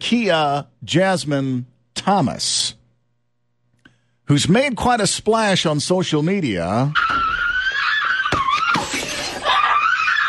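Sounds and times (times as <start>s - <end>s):
speech: 0.1s - 2.7s, 4.3s - 7.3s
woman screaming in a social-media video: 7.0s - 10.2s.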